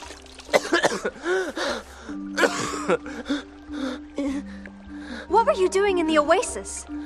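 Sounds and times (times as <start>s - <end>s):
water splashing from thrashing: 0.0s - 5.3s
person coughing and sputtering after swallowing water: 0.5s - 1.2s, 2.4s - 3.0s
speech: 1.0s - 3.4s, 5.5s - 7.0s
strained gasps and choking breaths: 1.2s - 5.3s.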